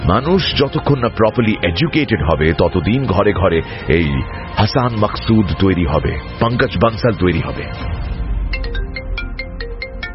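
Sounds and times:
speech: 0.1s - 8.1s
mobile phone ringtone: 8.5s - 10.1s.

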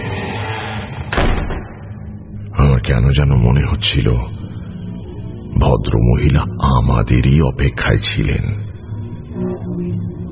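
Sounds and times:
door slamming shut in a cold wind: 1.1s - 2.0s
speech: 2.9s - 4.4s, 5.5s - 8.7s, 9.4s - 10.2s.

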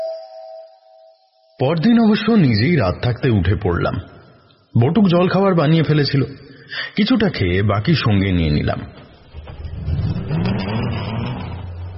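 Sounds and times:
speech: 1.6s - 4.1s, 4.8s - 9.0s
old Ford car engine revving as the car pulls out before dawn: 9.2s - 11.9s.

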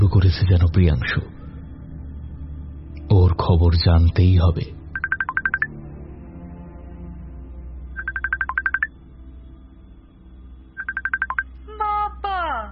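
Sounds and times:
speech: 0.1s - 1.4s, 3.2s - 4.8s
phone call ringing on a messenger app: 5.0s - 5.7s, 8.0s - 8.9s, 10.8s - 11.4s.

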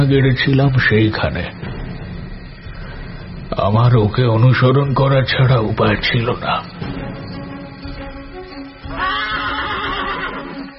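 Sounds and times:
speech: 0.0s - 1.7s, 3.6s - 6.9s
horse neighing: 8.8s - 10.7s.

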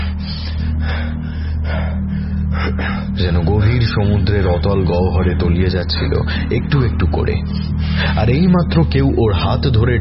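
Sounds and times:
man panting after waking from a nightmare: 0.0s - 3.2s
steady low hum: 0.0s - 9.9s
speech: 3.2s - 9.9s.

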